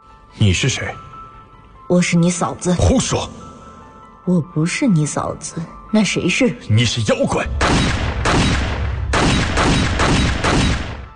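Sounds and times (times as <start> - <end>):
speech: 0.4 - 1.1, 1.9 - 3.4, 4.2 - 8.6
rapid pistol gunfire: 7.6 - 11.1.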